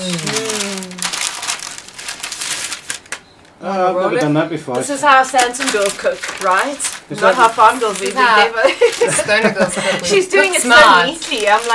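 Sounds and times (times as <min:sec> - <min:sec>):
speech: 0:00.0 - 0:00.6, 0:03.6 - 0:11.7
person humming: 0:00.0 - 0:01.2
parchment paper crinkling while rolling out dough: 0:00.0 - 0:03.2, 0:05.0 - 0:11.7
laughter: 0:08.4 - 0:10.6.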